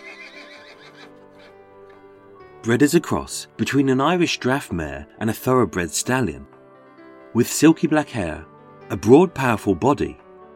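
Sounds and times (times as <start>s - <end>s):
horse neighing: 0.0s - 1.6s
speech: 2.6s - 6.5s, 7.4s - 10.2s.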